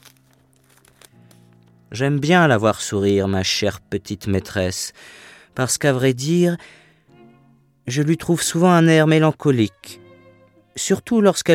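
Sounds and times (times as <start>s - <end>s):
paper crinkling and ripping: 0.0s - 1.8s
speech: 1.9s - 6.8s, 7.9s - 10.0s, 10.8s - 11.5s.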